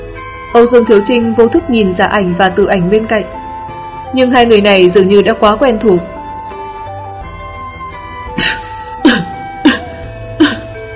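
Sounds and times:
speech: 0:00.6 - 0:03.4, 0:04.1 - 0:06.1
group of bandits coughing dryly: 0:08.4 - 0:10.8.

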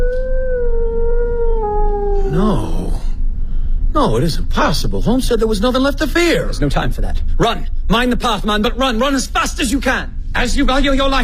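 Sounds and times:
sheepdog howling on the moor: 0:00.0 - 0:03.1
low rumble: 0:00.0 - 0:11.2
speech: 0:02.3 - 0:02.8, 0:04.0 - 0:11.2.

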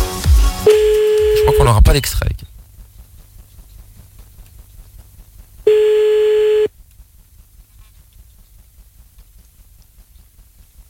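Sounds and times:
telephone ringback tone: 0:00.7 - 0:01.8, 0:05.7 - 0:06.7
low hum: 0:00.7 - 0:10.8
speech: 0:01.6 - 0:02.5.

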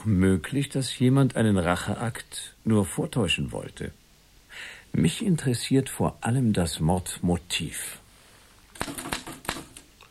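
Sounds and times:
speech: 0:00.0 - 0:04.0, 0:04.6 - 0:08.0, 0:08.8 - 0:09.2
faint hiss: 0:00.0 - 0:10.1
typewriter keys clicking while typing notes: 0:08.8 - 0:10.1.

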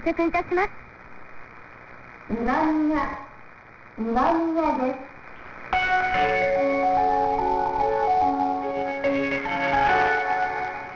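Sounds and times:
speech: 0:00.0 - 0:00.9, 0:02.3 - 0:03.3, 0:04.0 - 0:05.1, 0:06.2 - 0:06.7
electronic train station departure melody based on a folk song: 0:05.8 - 0:10.9.

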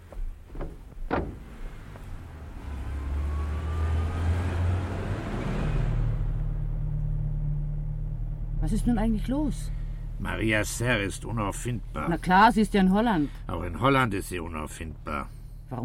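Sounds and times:
car doors shutting: 0:00.0 - 0:03.0
car engine starting and driving off: 0:00.0 - 0:15.8
speech: 0:08.7 - 0:15.8.

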